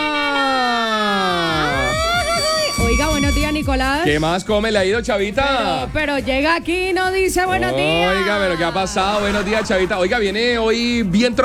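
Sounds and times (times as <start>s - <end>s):
siren wailing: 0.0s - 4.0s
speech: 3.6s - 11.4s
laughter: 7.5s - 11.4s.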